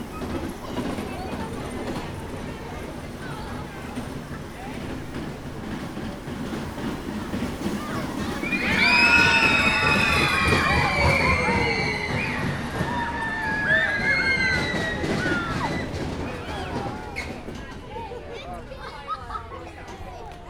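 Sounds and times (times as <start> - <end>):
children screaming on a caterpillar train ride at Debrecen zoo: 0.0 - 19.5.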